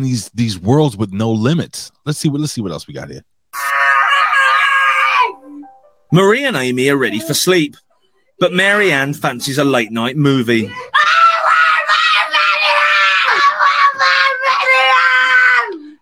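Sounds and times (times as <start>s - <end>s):
speech: 0.0s - 3.7s, 6.1s - 11.0s
people screaming in British accents: 3.6s - 5.4s, 10.7s - 15.8s
people shouting: 3.6s - 5.4s, 10.7s - 15.8s.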